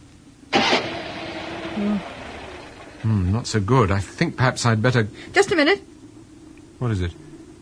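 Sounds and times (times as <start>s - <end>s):
car engine cranking and failing to start, car with windscreen gone: 0.5s - 3.3s
speech: 1.8s - 2.1s, 3.0s - 5.9s, 6.8s - 7.2s.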